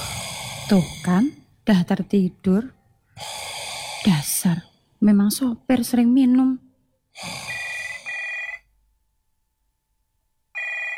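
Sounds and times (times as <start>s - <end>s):
speech: 0.7s - 6.6s
mobile phone ringing: 7.5s - 8.7s, 10.6s - 10.9s.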